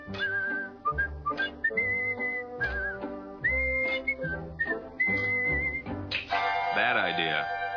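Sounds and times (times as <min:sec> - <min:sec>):
person whistling a bright bouncy melody: 0:00.0 - 0:05.9
steady instrumental backing music: 0:00.0 - 0:07.7
speech: 0:06.8 - 0:07.6.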